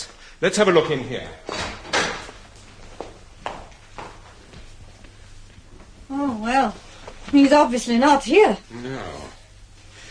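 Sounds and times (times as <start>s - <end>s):
speech: 0.4s - 1.5s, 6.1s - 9.3s
door shutting with a solid thud: 1.5s - 2.4s.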